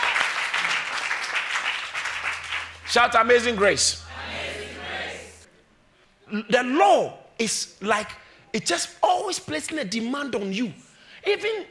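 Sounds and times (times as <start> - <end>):
audience clapping: 0.0 - 4.9
speech: 2.9 - 4.0, 6.3 - 11.6.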